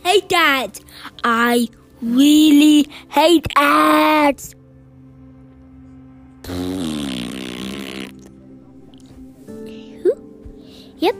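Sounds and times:
speech: 0.2 - 4.6, 11.0 - 11.1
loud buzzy fart: 6.4 - 8.4.

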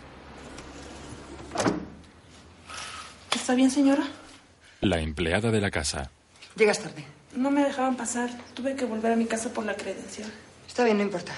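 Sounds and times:
windows being closed: 0.4 - 2.0
speech: 3.5 - 4.2, 4.8 - 11.3.

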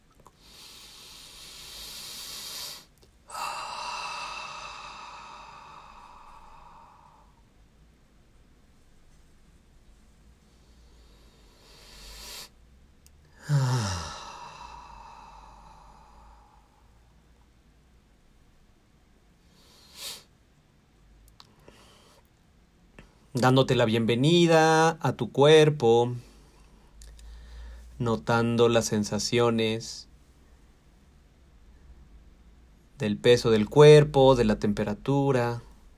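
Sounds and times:
deep breaths in through the nose and out through the mouth: 0.3 - 7.4, 10.4 - 12.6, 13.3 - 17.1, 26.3 - 28.0
speech: 23.4 - 26.3, 28.0 - 30.1, 33.0 - 35.7.

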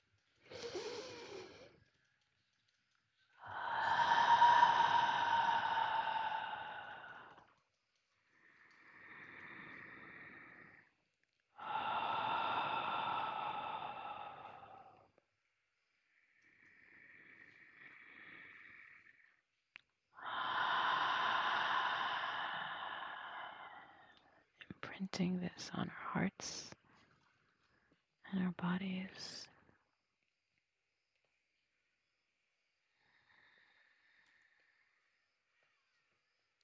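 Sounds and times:
slow deep breaths in a calm guided breathing exercise: 0.2 - 2.0, 3.4 - 19.6, 20.2 - 24.9, 32.4 - 35.6
speech: 25.0 - 26.8, 28.5 - 29.5.

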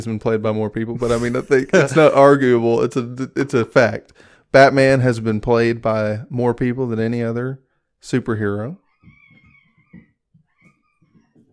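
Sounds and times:
speech: 0.0 - 9.2
fighting cats yowling: 8.8 - 11.5.

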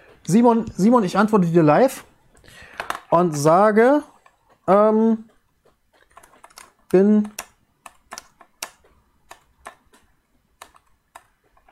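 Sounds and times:
speech: 0.3 - 4.1, 4.7 - 5.3, 6.9 - 7.4
man typing a reply on a computer keyboard: 4.1 - 11.7.

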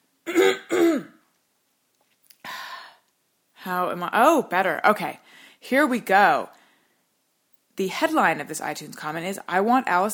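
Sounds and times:
loud throat clearing: 0.2 - 1.2
speech: 3.7 - 6.6, 7.8 - 10.1.

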